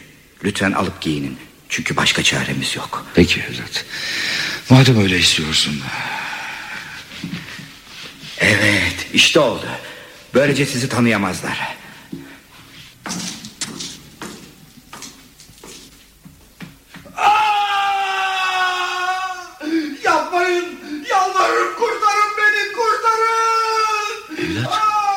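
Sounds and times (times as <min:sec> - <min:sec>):
speech: 0:00.4 - 0:06.2, 0:08.5 - 0:11.8
man screaming in agony while tortured by hungry rats in a prison cell: 0:17.0 - 0:21.9, 0:23.0 - 0:25.1.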